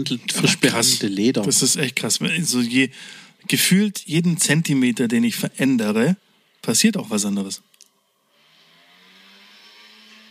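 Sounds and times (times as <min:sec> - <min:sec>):
speech: 0:00.0 - 0:07.8
small motor scooter driving past: 0:08.2 - 0:10.2.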